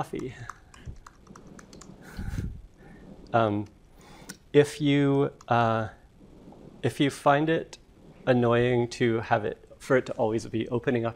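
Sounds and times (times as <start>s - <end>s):
speech: 0.0s - 0.6s, 3.3s - 3.8s, 4.5s - 6.0s, 6.8s - 11.1s
typing on a computer keyboard: 0.0s - 2.2s.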